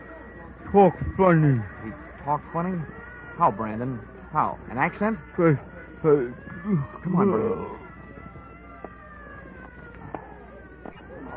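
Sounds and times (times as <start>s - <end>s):
ambulance siren wailing: 0.0s - 11.3s
busy street rumble: 0.0s - 11.3s
speech: 0.7s - 7.8s.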